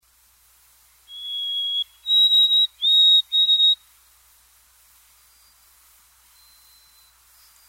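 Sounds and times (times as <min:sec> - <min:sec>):
bird whistling: 0:01.1 - 0:03.8, 0:06.3 - 0:07.2.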